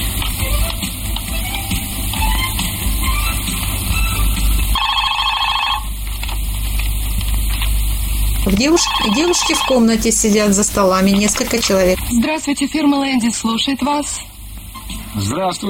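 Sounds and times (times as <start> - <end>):
loud steady hiss: 0.0 - 4.8, 6.0 - 15.6
office telephone ringing after a number is dialled: 4.8 - 6.0, 8.5 - 12.0
speech: 8.6 - 14.3, 15.2 - 15.6.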